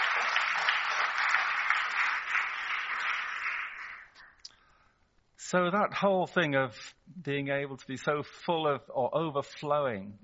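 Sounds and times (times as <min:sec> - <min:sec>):
audience applause: 0:00.0 - 0:04.4
speech: 0:05.5 - 0:10.2.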